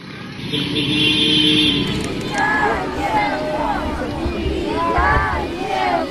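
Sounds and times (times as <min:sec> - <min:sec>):
buses and ambulances rumbling onto hospital grounds in Chernihiv: 0:00.0 - 0:06.0
crowd shouting and cheering welcome outdoors: 0:01.8 - 0:06.0.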